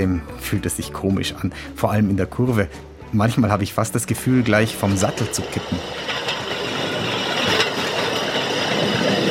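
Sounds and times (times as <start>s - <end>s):
speech: 0.0s - 6.4s
small rail draisine rolling along the track at full speed: 3.2s - 9.2s.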